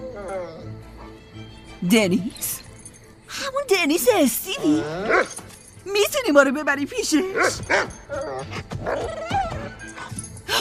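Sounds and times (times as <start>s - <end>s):
female dog whimpering with high wavering whines: 0.0s - 1.2s, 4.6s - 5.4s, 7.4s - 10.4s
speech: 1.8s - 2.6s, 3.7s - 9.4s
female dog barking: 7.4s - 8.0s.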